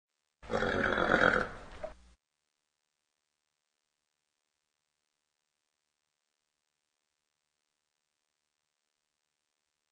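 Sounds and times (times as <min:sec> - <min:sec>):
horse snorting: 0:00.4 - 0:01.7.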